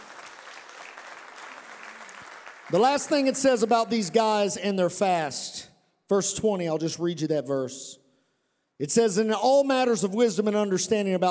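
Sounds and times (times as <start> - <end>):
church congregation clapping hands: 0.0 - 4.6
speech: 2.7 - 8.0, 8.8 - 11.2.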